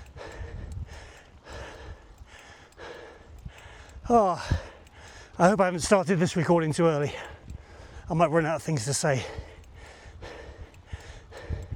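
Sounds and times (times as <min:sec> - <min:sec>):
heavy breathing while hiking uphill: 0:00.0 - 0:05.6, 0:07.0 - 0:08.1, 0:09.2 - 0:11.7
speech: 0:04.1 - 0:04.7, 0:05.4 - 0:07.3, 0:08.1 - 0:09.4.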